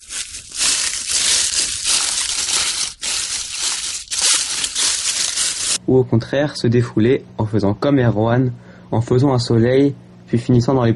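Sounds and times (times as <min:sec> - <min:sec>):
footsteps crunching dry leaves in a wood at Saint-Avertin: 0:00.0 - 0:05.8
speech: 0:05.9 - 0:10.9.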